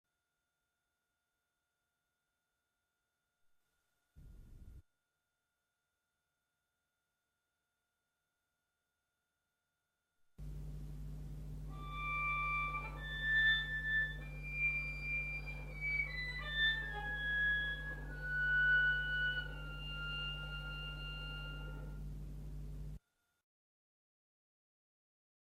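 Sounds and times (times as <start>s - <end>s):
harmonics: 10.4s - 23.0s.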